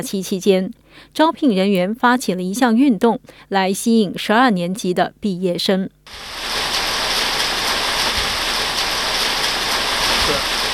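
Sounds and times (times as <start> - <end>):
speech: 0.0 - 6.6
rain falling on a roof: 6.1 - 10.7.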